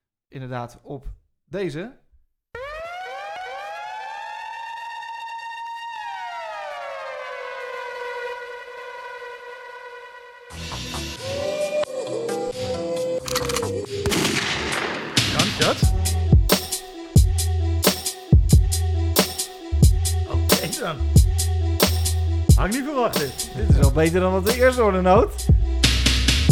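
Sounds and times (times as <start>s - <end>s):
speech: 0.3s - 2.0s, 22.6s - 25.5s
sustained siren-like synth tone: 2.6s - 14.1s
loud punchy music beat with heavy bass hits and an eighties sample: 15.6s - 26.4s.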